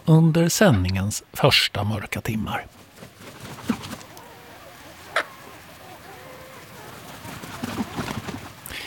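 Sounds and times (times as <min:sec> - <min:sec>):
speech: 0:00.1 - 0:02.8
bird calls on a still night at Björköby in Ostrobothnia, Finland: 0:02.7 - 0:08.8.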